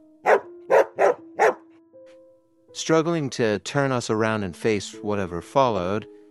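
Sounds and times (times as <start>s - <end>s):
dog barking: 0.2s - 1.7s
speech: 2.8s - 6.2s.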